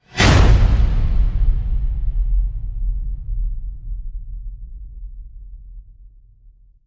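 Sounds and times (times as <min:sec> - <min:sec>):
imminent whoosh: 0:00.0 - 0:03.7.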